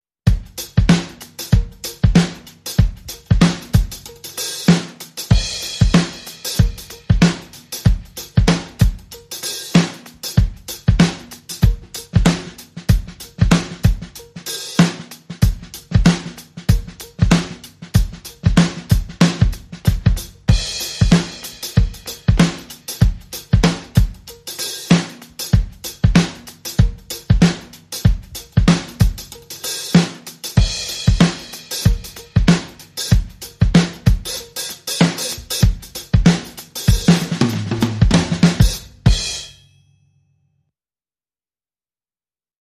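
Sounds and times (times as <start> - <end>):
funk drums and percussion: 0.2 - 39.6.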